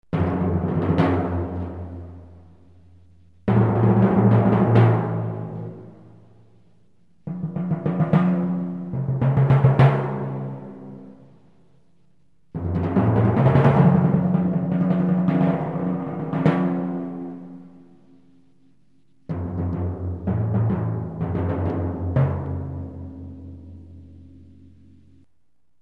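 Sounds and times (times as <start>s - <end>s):
timpani: 0.1s - 6.5s, 7.1s - 11.4s, 12.5s - 18.4s, 19.2s - 25.2s.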